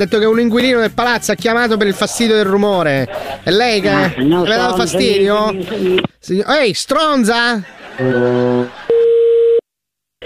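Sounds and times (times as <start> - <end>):
speech: 0.0 - 8.8
laughter: 1.5 - 6.0, 7.3 - 9.0
telephone tone after a call is hung up: 8.0 - 9.6.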